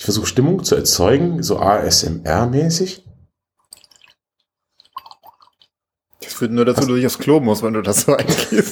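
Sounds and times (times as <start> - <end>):
speech: 0.1 - 3.1, 6.4 - 8.7
liquid splashing and trickling into a glass: 3.6 - 5.8.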